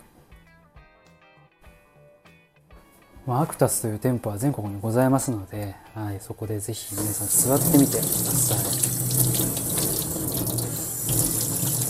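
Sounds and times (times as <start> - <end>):
speech: 3.2 - 9.8
hands being washed under running tap water: 6.8 - 11.8
running tap water splashing into a sink: 6.9 - 11.8.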